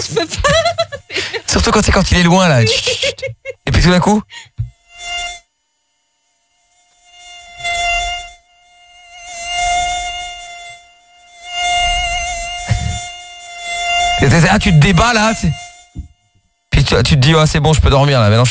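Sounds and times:
laughter: 0:00.0 - 0:01.7, 0:02.5 - 0:03.8
speech: 0:00.0 - 0:04.5, 0:14.2 - 0:15.6, 0:16.8 - 0:18.4
mosquito whining: 0:00.0 - 0:18.4.

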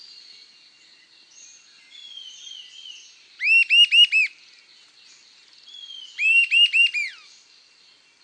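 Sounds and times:
Sibilant sirystes Sirystes sibilator sibilator whistled calls: 0:03.4 - 0:04.3, 0:05.8 - 0:07.3.

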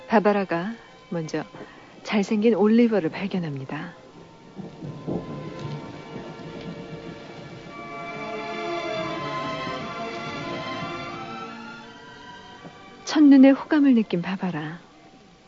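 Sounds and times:
steady rain: 0:00.0 - 0:15.4
speech: 0:00.1 - 0:04.0, 0:13.2 - 0:14.9
thunder rumbling: 0:01.0 - 0:14.8.

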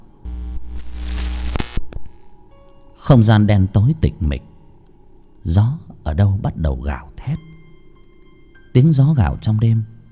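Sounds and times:
two head-mounted flashlights buzzing and crackling: 0:00.0 - 0:02.4
speech: 0:03.1 - 0:04.5, 0:05.4 - 0:07.5, 0:08.7 - 0:09.9.

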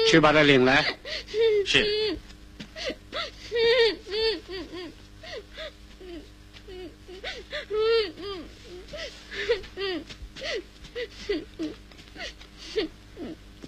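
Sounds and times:
speech: 0:00.1 - 0:02.2, 0:07.6 - 0:13.4
child crying in a staged drama: 0:00.8 - 0:02.2, 0:02.8 - 0:05.4, 0:06.0 - 0:10.1, 0:11.1 - 0:13.4.

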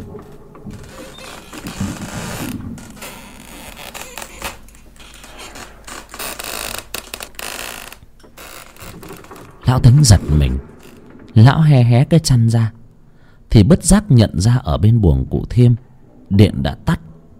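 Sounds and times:
wooden doors creaking and rattling in the wind: 0:00.0 - 0:13.1
speech: 0:09.7 - 0:10.7, 0:11.4 - 0:12.8, 0:13.5 - 0:17.0.

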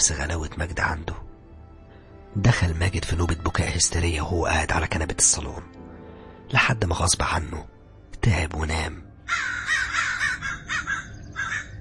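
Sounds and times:
speech: 0:00.0 - 0:01.2, 0:02.3 - 0:05.8, 0:06.5 - 0:09.6
crows cawing: 0:09.2 - 0:11.7.

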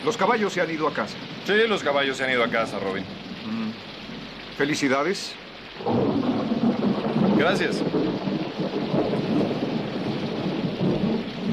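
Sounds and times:
speech: 0:00.0 - 0:04.0, 0:04.6 - 0:06.1, 0:07.4 - 0:08.3
steady rain pouring: 0:00.0 - 0:11.5.

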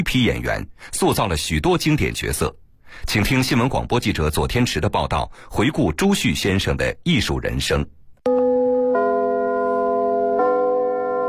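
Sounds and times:
speech: 0:00.0 - 0:08.4
theatre curtain-raising bell chiming in Beijing: 0:08.3 - 0:11.2.

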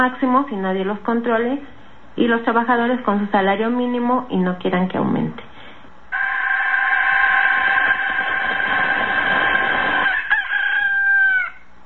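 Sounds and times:
speech: 0:00.0 - 0:05.5
rooster crowing: 0:06.1 - 0:11.7.

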